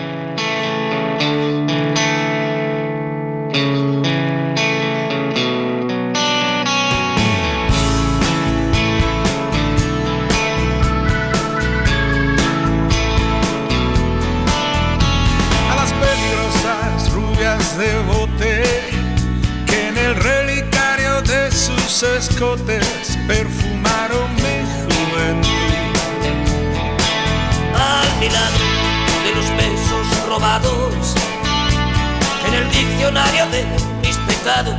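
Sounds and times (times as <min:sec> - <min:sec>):
distorted electric guitar in a mid-tempo rock song: 0:00.0 - 0:34.7
full rock band with drums: 0:06.2 - 0:34.7.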